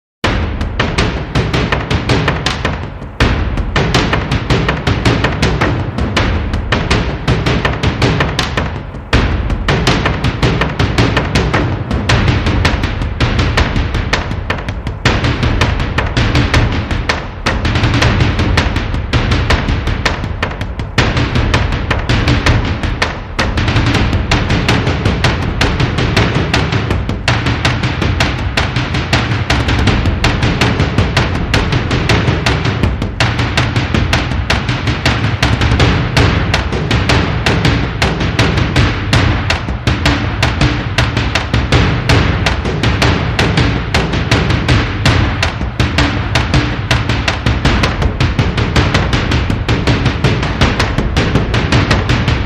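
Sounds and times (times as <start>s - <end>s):
mid drums: 0.2s - 52.4s.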